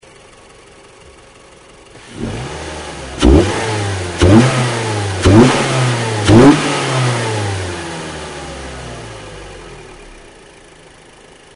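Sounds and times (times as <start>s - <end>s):
Mazda3 engine intake sound: 1.9s - 10.7s.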